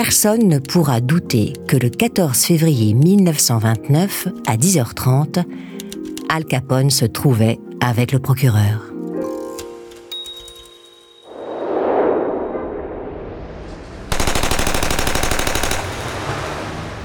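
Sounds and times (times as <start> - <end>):
speech: 0.0 - 8.9
swelling whoosh: 11.2 - 14.2
machine-gun fire in a warehouse: 14.1 - 16.3.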